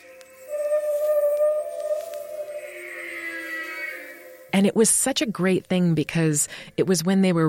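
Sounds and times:
layered dolphin whistles and squeals as telepathy sound effect: 0:00.4 - 0:04.5
speech: 0:04.6 - 0:07.4.

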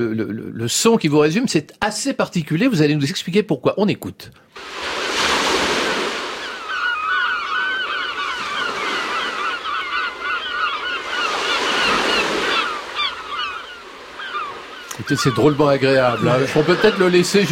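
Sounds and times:
speech: 0:00.0 - 0:05.0, 0:15.1 - 0:17.4
breaking ocean surf: 0:04.5 - 0:17.4
gulls calling over breaking ocean surf: 0:04.6 - 0:17.4.

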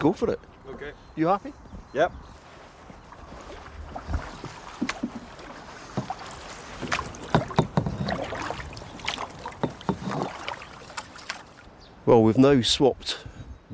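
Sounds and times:
speech: 0:00.0 - 0:02.4, 0:12.1 - 0:13.3
paddles dipping and splashing in river water: 0:02.3 - 0:11.8
rafted-up canoes knocking: 0:04.1 - 0:11.4.

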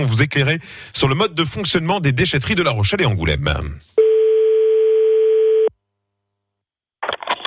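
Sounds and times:
speech: 0:00.0 - 0:03.9
telephone ringing tone during outgoing call: 0:04.0 - 0:05.7.

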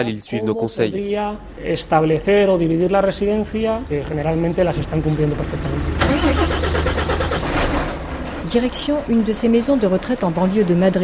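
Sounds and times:
speech: 0:00.0 - 0:06.4, 0:08.5 - 0:11.0
large truck engine starting and rumbling: 0:04.3 - 0:11.0.

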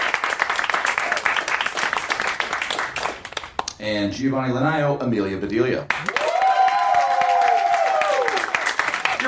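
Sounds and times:
crowd clapping: 0:00.0 - 0:03.8, 0:05.9 - 0:09.2
speech: 0:03.8 - 0:06.2
person whooping: 0:06.0 - 0:08.5
cheering: 0:06.0 - 0:09.2.

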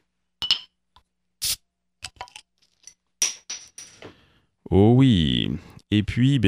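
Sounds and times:
pale ale glass bottle clinking: 0:00.4 - 0:00.8, 0:02.1 - 0:04.1
speech: 0:04.7 - 0:06.4.

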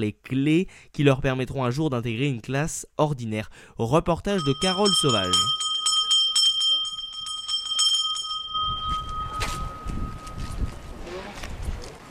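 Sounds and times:
speech: 0:00.0 - 0:05.7
bell ringing to call children at a centre: 0:04.4 - 0:10.8.

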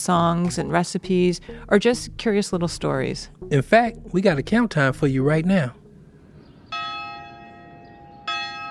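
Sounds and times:
speech: 0:00.0 - 0:05.8
large prison courtyard bell ringing: 0:06.7 - 0:08.6.

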